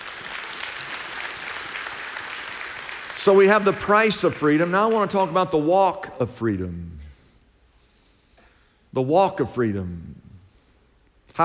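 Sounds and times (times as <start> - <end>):
audience applauding: 0.0 - 5.2
speech: 3.2 - 7.0, 9.0 - 10.2.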